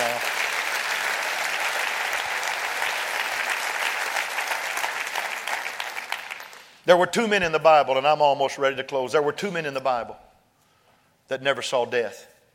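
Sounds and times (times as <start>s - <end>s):
audience clapping hands: 0.0s - 6.8s
speech: 6.9s - 10.2s, 11.3s - 12.3s.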